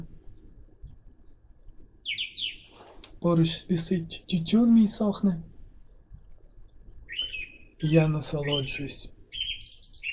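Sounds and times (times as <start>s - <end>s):
low outdoor rumble: 0.0s - 2.1s, 3.1s - 9.4s
bright quick bird chirps: 0.0s - 2.8s, 5.8s - 10.1s
faint calls: 0.0s - 10.1s
speech: 3.2s - 5.5s, 7.8s - 9.2s.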